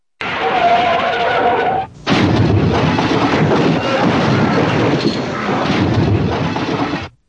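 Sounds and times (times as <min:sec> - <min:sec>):
tires skidding: 0:00.2 - 0:01.9
loud crash of impact: 0:02.1 - 0:07.2.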